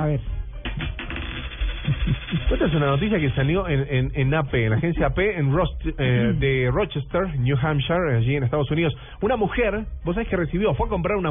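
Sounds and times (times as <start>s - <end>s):
speech: 0.1s - 0.9s, 2.0s - 11.2s
coins dropping and clinking: 0.7s - 3.5s.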